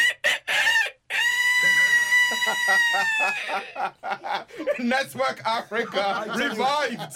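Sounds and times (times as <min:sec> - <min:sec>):
person imitating a cockerel crowing: 0:00.0 - 0:03.5
laughter: 0:01.6 - 0:07.1
speech: 0:02.7 - 0:07.1.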